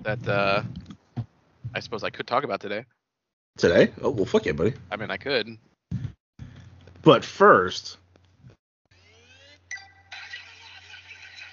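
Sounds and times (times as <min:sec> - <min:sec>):
speech: 0:00.0 - 0:00.9, 0:01.7 - 0:03.0, 0:03.6 - 0:06.1, 0:07.0 - 0:08.0
mobile phone ringtone or notification chiming at low volume: 0:09.7 - 0:10.7.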